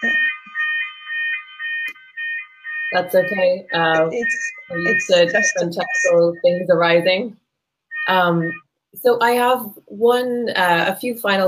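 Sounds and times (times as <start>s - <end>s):
fire alarm blaring with shrill electronic tone: 0.0s - 7.1s, 7.9s - 8.7s
speech: 2.9s - 7.4s, 8.1s - 11.4s.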